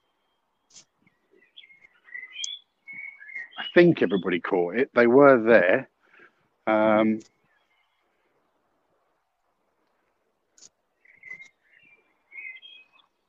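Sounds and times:
bird singing outdoors: 0.0 - 4.9, 6.7 - 8.8, 10.6 - 13.2
speech: 3.7 - 5.9, 6.7 - 7.4.

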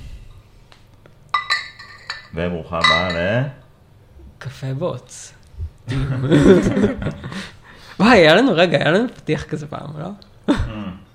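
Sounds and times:
glasses clinking in a toast: 1.3 - 3.7
speech: 2.4 - 3.6, 4.4 - 10.7
laughter: 5.9 - 7.6.

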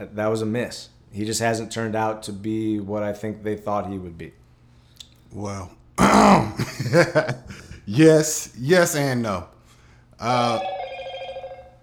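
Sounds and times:
speech: 0.0 - 4.4, 5.3 - 9.6, 10.2 - 10.7
phone ringing: 10.3 - 11.8.

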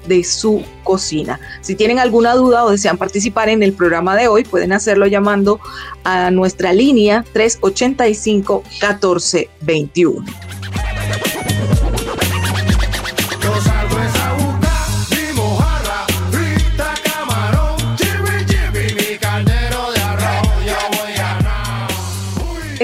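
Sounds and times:
speech: 0.1 - 10.7
scratchy turntable-like accents: 10.2 - 15.0, 20.1 - 22.8
song with repeating deep bassline and punchy beats: 10.2 - 22.8.

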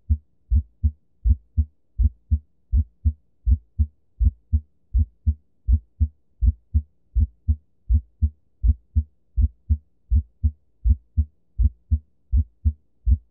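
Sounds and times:
heartbeat with a split first heart sound: 0.0 - 13.2.

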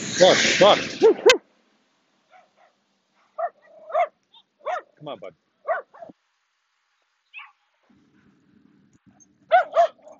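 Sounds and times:
speech: 0.2 - 1.3, 5.0 - 5.8
dogs barking and yipping: 2.3 - 5.0, 5.6 - 6.2, 7.3 - 8.3, 9.0 - 10.1.

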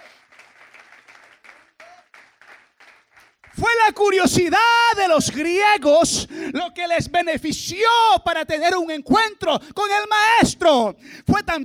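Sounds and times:
congregation applauding: 0.0 - 3.6
speech: 3.6 - 11.6.

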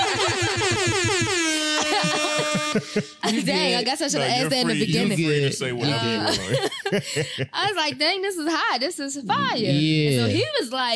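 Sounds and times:
laughter: 0.0 - 8.1
air horn sound effect blasts: 0.2 - 3.0
speech: 2.8 - 10.9.

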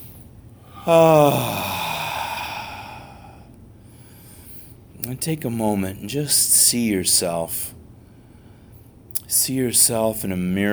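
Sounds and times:
person taking a deep breath let out as a voiced sigh: 0.7 - 3.5
speech: 0.8 - 1.7, 5.0 - 7.8, 9.3 - 10.7.

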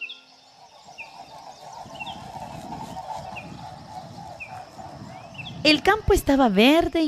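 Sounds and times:
birds calling in short high chirps: 0.0 - 7.0
steady low rumbling noise: 0.5 - 6.5
speech: 5.6 - 7.0.

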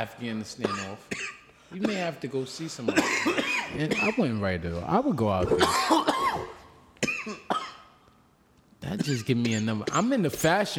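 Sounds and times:
speech: 0.0 - 6.4, 9.0 - 10.7
person coughing: 0.6 - 2.2, 2.8 - 4.2, 5.4 - 8.0, 8.9 - 10.1.

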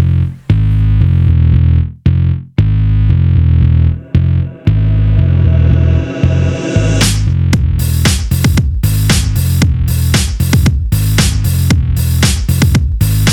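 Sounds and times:
loud heavy bass chords in an 80s-style song intro: 0.0 - 13.3
long rising synth sweep: 3.6 - 7.4
punchy rhythmic hits with bright distorted bursts: 3.8 - 9.4.

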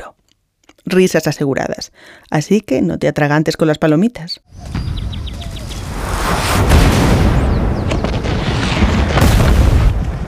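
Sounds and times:
speech: 0.9 - 4.8
bombardment explosions sound effect: 4.5 - 10.2.

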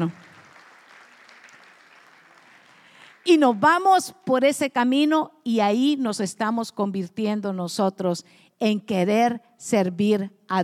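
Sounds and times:
speech: 0.0 - 0.2, 3.3 - 10.6
congregation clapping steadily together: 0.0 - 3.9.

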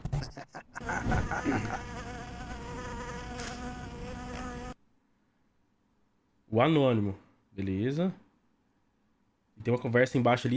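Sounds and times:
laughter: 0.0 - 2.1
speech: 0.2 - 2.1, 6.5 - 8.2, 9.6 - 10.5
housefly buzzing: 0.8 - 4.8.

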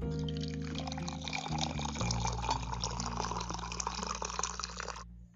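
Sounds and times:
ginger tea pouring into a cup: 0.1 - 5.0.

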